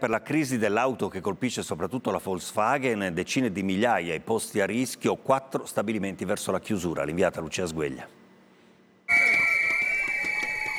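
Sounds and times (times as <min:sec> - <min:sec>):
speech: 0:00.0 - 0:08.2
shrill whistles blown by protesting workers at a union march outside a car plant: 0:09.1 - 0:10.7.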